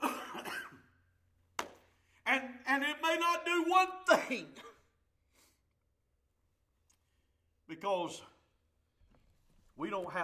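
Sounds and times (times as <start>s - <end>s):
harsh coughs: 0.0s - 1.0s, 4.1s - 5.0s
speech: 2.4s - 4.7s, 7.8s - 8.3s, 9.8s - 10.2s.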